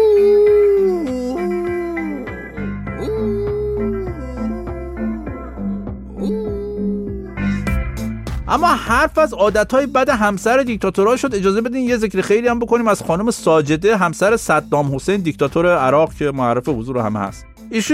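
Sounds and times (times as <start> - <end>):
dog whimpering and howling: 0.0 - 7.4
steady rhythmic beat: 0.0 - 17.9
speech: 8.5 - 17.9.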